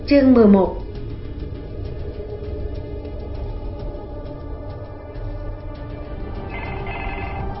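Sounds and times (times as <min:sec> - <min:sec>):
speech: 0:00.1 - 0:00.8
telephone bell ringing: 0:06.5 - 0:07.5.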